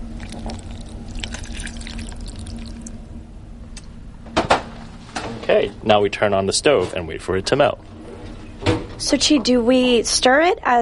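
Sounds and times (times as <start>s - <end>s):
water pouring onto chocolate in a small saucepan: 0.0s - 2.9s
low hum: 0.0s - 10.8s
speech: 5.5s - 8.0s, 9.0s - 10.8s.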